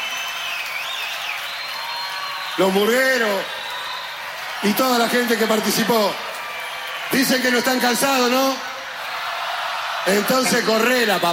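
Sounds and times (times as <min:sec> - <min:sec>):
high whistles: 0:00.0 - 0:04.2
crowd applauding a band: 0:00.0 - 0:11.3
speech: 0:02.6 - 0:03.6, 0:04.6 - 0:06.3, 0:07.1 - 0:08.7, 0:10.0 - 0:11.3.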